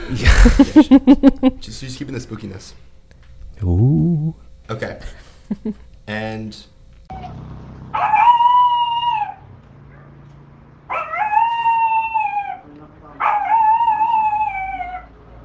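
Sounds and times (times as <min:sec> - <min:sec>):
laughter: 0:00.0 - 0:01.7, 0:05.4 - 0:05.8
speech: 0:00.1 - 0:02.9, 0:03.6 - 0:08.2
small dog yelping howls, like a chihuahua: 0:08.0 - 0:10.1, 0:10.9 - 0:15.2.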